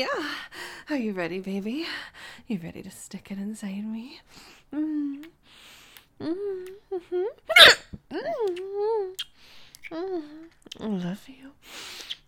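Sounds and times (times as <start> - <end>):
speech: 0.0 - 12.2
person hiccuping: 7.5 - 8.0.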